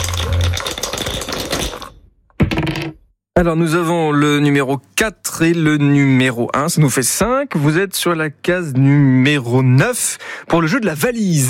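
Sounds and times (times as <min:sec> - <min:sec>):
two dice rattling for a board game: 0:00.0 - 0:03.0
speech: 0:03.4 - 0:11.4.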